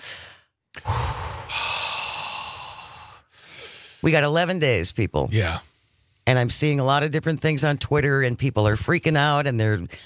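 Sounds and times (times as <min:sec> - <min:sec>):
group taking a deep cleansing breath together: 0:00.0 - 0:04.0
speech: 0:04.0 - 0:05.7, 0:06.3 - 0:10.0.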